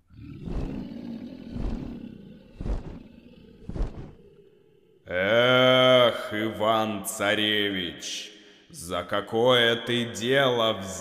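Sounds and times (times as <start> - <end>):
three-headed dragon roaring while flying in from a lake: 0.0 - 5.2
low continuous growl: 0.0 - 6.8
speech: 6.6 - 10.9.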